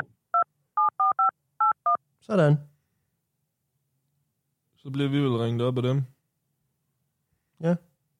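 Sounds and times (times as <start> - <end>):
electronic telephone keypad beeps entering a callback number: 0.0 - 2.0
speech: 2.2 - 2.7, 4.8 - 6.2, 7.6 - 7.9.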